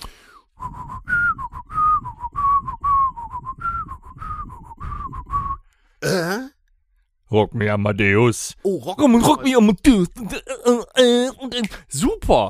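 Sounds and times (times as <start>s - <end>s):
person whistling a catchy pop tune: 0.5s - 5.7s
speech: 7.3s - 12.4s.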